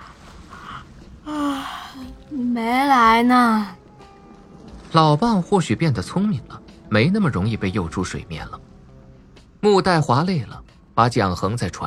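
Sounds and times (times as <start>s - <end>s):
person acting out a lazy yawn: 1.3s - 2.2s
speech: 2.6s - 3.8s, 4.9s - 8.6s, 9.6s - 11.8s.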